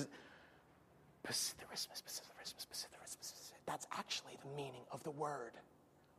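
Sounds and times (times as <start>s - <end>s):
person demonstrating whispering: 1.2s - 4.7s
speech: 1.3s - 5.8s.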